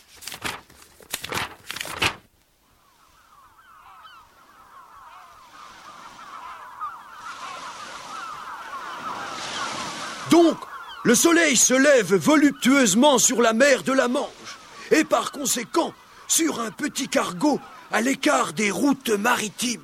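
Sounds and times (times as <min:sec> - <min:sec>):
paper sheets being leafed through: 0:00.0 - 0:02.4
honking birds: 0:02.7 - 0:19.8
speech: 0:10.3 - 0:19.8.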